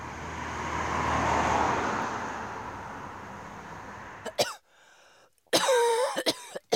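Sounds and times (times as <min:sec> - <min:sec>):
passing car road noise: 0:00.0 - 0:04.4
neighbour woman coughing: 0:04.3 - 0:04.6, 0:05.5 - 0:06.7.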